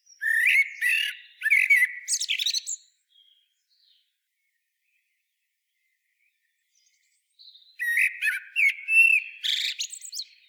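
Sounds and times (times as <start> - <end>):
common blackbird Turdus merula song: 0.0 - 10.4.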